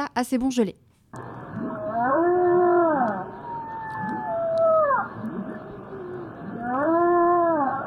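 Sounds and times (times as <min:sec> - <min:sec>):
speech: 0:00.2 - 0:01.4
whale song: 0:01.3 - 0:07.8.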